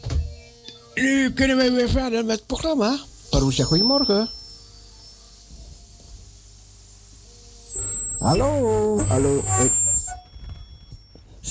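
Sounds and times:
speech: 1.0 - 4.4, 8.2 - 9.8
high-pitched electronic tone from telephone line interference: 3.4 - 5.4, 7.7 - 11.4.

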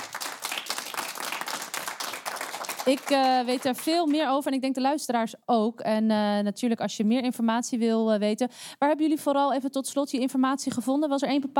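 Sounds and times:
crowd applauding invited experts: 0.0 - 4.2
speech: 2.8 - 11.5.

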